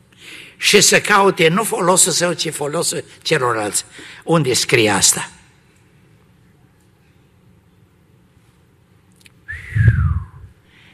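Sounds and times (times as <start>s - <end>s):
speech: 0.3s - 5.4s
low rumble: 9.5s - 10.5s
person whistling a descending note: 9.5s - 10.5s.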